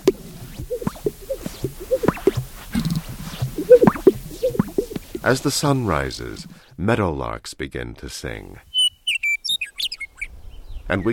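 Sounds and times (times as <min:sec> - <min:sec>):
male sage grouse popping and bubbling display calls: 0:00.0 - 0:05.4, 0:08.7 - 0:10.3
speech: 0:05.2 - 0:08.7, 0:10.9 - 0:11.1.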